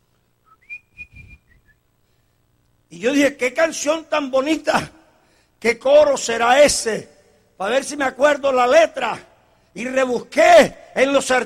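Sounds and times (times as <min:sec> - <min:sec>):
person whistling a short cheerful melody: 0:00.5 - 0:01.8
speech: 0:02.9 - 0:05.0, 0:05.6 - 0:11.4.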